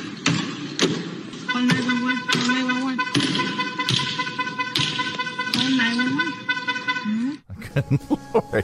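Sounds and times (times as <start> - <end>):
hammer banging on a self-driving car: 0.0 - 6.0
steady blaring horn-like tone: 1.5 - 7.4
laughter: 7.5 - 8.6.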